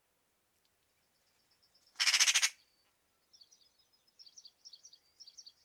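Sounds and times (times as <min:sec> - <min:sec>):
Eurasian magpie harsh call: 0:02.0 - 0:02.6.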